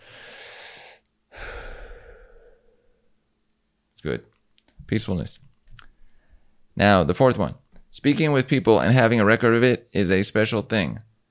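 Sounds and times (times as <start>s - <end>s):
person taking a deep breath: 0.0s - 3.1s, 5.9s - 6.6s
speech: 4.0s - 5.5s, 6.8s - 11.1s.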